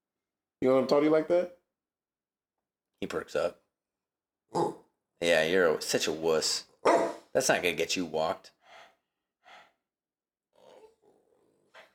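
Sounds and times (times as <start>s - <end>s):
speech: 0.6s - 1.6s, 3.0s - 3.6s, 4.5s - 6.7s, 7.4s - 8.6s
dog growling with low snarl: 10.6s - 11.8s.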